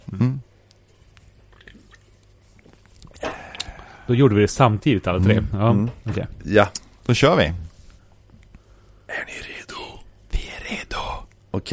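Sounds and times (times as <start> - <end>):
people sipping a drink with slurp and swallow: 0.0 - 4.1
faint wet mouth clicks: 0.6 - 3.8
speech: 4.1 - 7.6.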